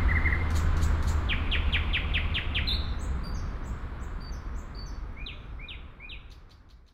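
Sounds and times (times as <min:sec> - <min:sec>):
low background rumble: 0:00.0 - 0:04.4
nightingale singing at Sergiyev Posad: 0:00.0 - 0:06.9.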